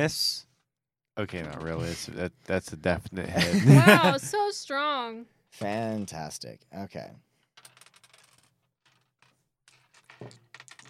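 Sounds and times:
speech: 0.0 - 0.4, 1.2 - 7.3
laughter: 3.3 - 4.4
dice rattling and clattering while someone fidgets with them: 7.6 - 10.8.

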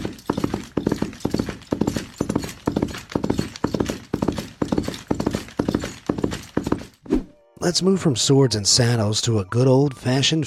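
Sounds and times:
Foley galloping horse hoofbeats: 0.0 - 7.1
metallic jingling: 0.0 - 7.1
speech: 7.6 - 10.4.

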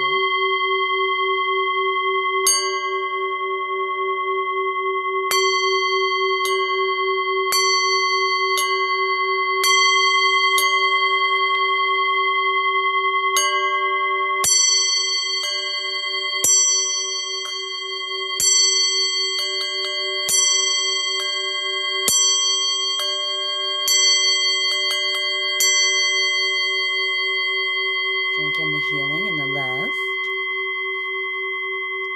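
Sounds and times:
Tibetan singing bowl sustained hum: 0.0 - 32.1.

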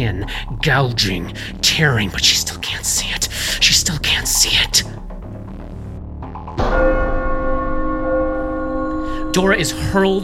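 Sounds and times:
speech: 0.0 - 5.2, 9.4 - 10.2
giant bell tolling: 6.6 - 10.2.

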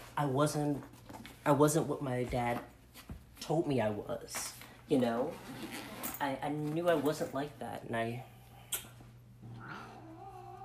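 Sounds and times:
steady low hum: 0.0 - 10.6
speech: 0.2 - 8.3
angry cat yowling: 9.6 - 10.6.

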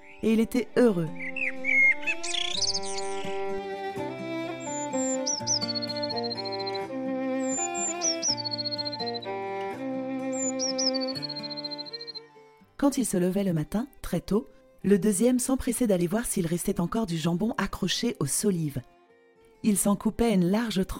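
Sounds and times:
birds chirping and calling: 0.0 - 3.6, 4.2 - 12.4
gentle music: 0.0 - 20.9
speech: 0.2 - 1.3, 12.9 - 18.9, 19.6 - 20.9
bird rising whistled calls: 1.2 - 3.4, 4.6 - 6.8, 7.4 - 9.4, 10.3 - 12.2.

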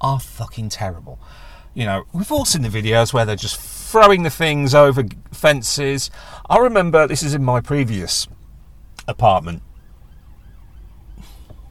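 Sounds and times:
speech: 0.0 - 8.4, 9.0 - 9.7
low traffic rumble: 0.0 - 11.7
police siren wailing with rising and falling tone: 9.4 - 11.7.

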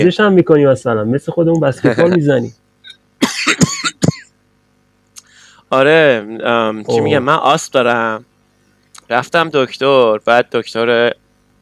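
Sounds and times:
speech: 0.0 - 2.6, 5.7 - 8.3, 9.1 - 11.2
laughter: 1.8 - 2.2
harsh coughing: 3.2 - 4.4.

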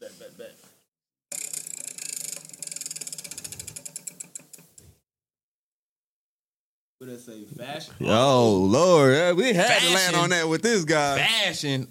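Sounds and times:
prize wheel pointer ticking against pegs: 1.3 - 4.8
speech: 7.0 - 11.8.

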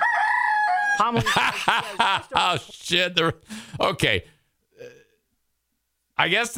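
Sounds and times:
rooster crowing: 0.0 - 1.2
laughter: 1.0 - 3.0
speech: 1.0 - 4.3, 6.2 - 6.5.

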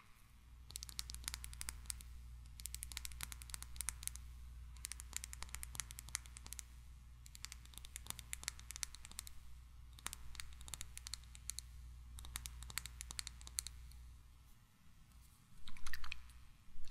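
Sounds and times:
steady low hum: 0.2 - 16.8
crisp tapping and clicking on a tiny microphone: 0.7 - 14.0.

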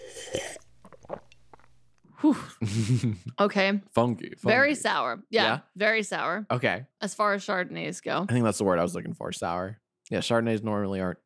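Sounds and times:
person sipping, swigging and swallowing wine: 0.0 - 2.1
speech: 2.2 - 11.2.

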